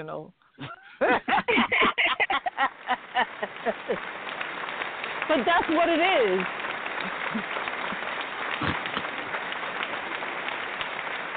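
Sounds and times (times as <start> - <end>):
speech: 0.0 - 1.7, 2.6 - 4.3, 5.3 - 7.6
laughter: 0.6 - 4.2
fake hand clapping: 2.7 - 11.3.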